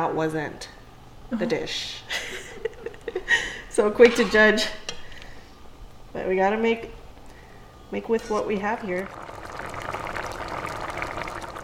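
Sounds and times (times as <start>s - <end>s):
speech: 0.0s - 4.8s, 6.1s - 7.0s, 7.9s - 9.4s
rice boiling in a pot: 8.0s - 11.6s.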